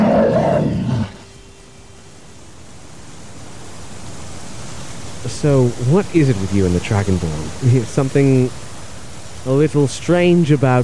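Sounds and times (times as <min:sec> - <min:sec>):
bear roaring: 0:00.0 - 0:01.2
faint hissing background: 0:00.0 - 0:10.8
speech: 0:05.4 - 0:08.6, 0:09.4 - 0:10.8.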